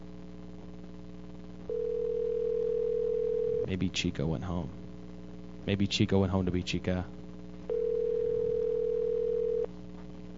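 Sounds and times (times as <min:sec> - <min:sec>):
electronic ringback tone of an outgoing phone call to a games and wigs shop: 0:01.7 - 0:03.6, 0:07.7 - 0:09.7
speech: 0:03.7 - 0:04.8, 0:05.6 - 0:07.2.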